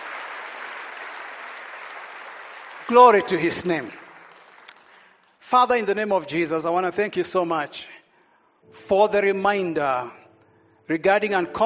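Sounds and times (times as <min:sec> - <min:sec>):
congregation clapping hands during a worship service: 0:00.0 - 0:05.9
speech: 0:02.9 - 0:04.0, 0:05.5 - 0:07.9, 0:08.6 - 0:10.2, 0:10.9 - 0:11.6.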